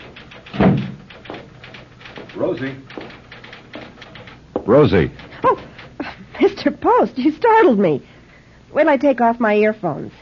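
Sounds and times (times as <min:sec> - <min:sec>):
office door opening with a solid clunk: 0:00.0 - 0:06.1
speech: 0:02.4 - 0:03.0, 0:04.7 - 0:05.7, 0:06.4 - 0:08.1, 0:08.7 - 0:10.2.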